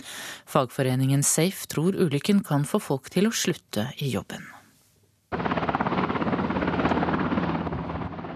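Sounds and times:
speech: 0:00.5 - 0:04.6
helicopter rotor chopping while coming in to land at an airport: 0:05.3 - 0:08.3.

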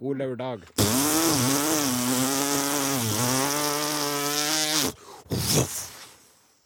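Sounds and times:
speech: 0:00.0 - 0:02.4, 0:03.0 - 0:03.6, 0:04.8 - 0:05.9
chainsaw cutting timber in a sunny forest in Nordfjord: 0:00.7 - 0:05.9.

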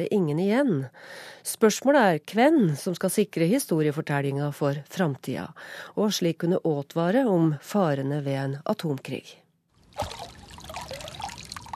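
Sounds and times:
speech: 0:00.0 - 0:09.4
river water sloshing and splashing around hands: 0:09.8 - 0:11.7.

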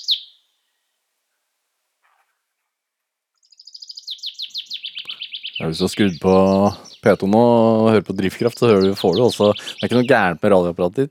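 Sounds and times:
male chaffinch singing: 0:00.0 - 0:00.6, 0:03.4 - 0:11.0
other birdsong: 0:00.0 - 0:01.0, 0:03.3 - 0:11.0
speech: 0:05.6 - 0:11.0.

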